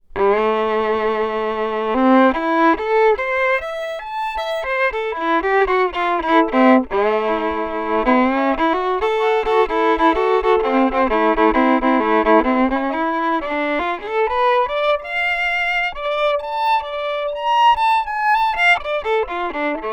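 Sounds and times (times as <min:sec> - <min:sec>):
violin: 0:00.0 - 0:19.9.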